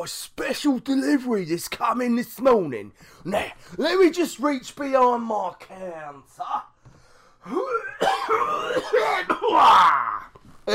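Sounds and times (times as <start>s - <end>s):
speech: 0.0s - 6.7s, 7.4s - 10.1s
harsh throaty coughs over goods shown at a shop counter: 7.5s - 9.7s.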